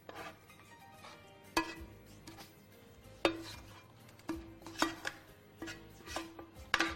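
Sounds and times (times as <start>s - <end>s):
spoon scraping and spreading soft fried onions in a tart shell: 0.0s - 6.9s
spoon clinking against a dish: 1.5s - 2.5s, 3.3s - 6.9s.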